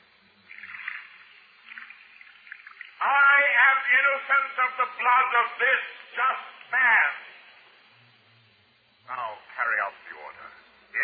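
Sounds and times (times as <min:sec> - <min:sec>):
water poured from a pitcher over a hand: 0:00.5 - 0:03.0
speech: 0:03.9 - 0:07.3, 0:09.1 - 0:10.2.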